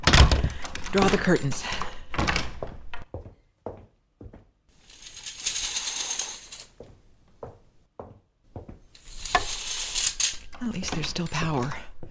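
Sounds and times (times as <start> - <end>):
door being locked: 0.0 - 3.0
speech: 0.9 - 1.9, 11.2 - 11.9.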